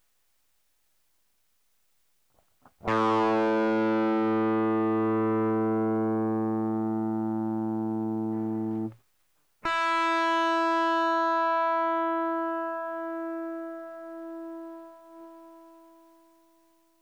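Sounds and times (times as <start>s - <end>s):
overdriven guitar: 2.7s - 9.0s, 9.6s - 16.1s.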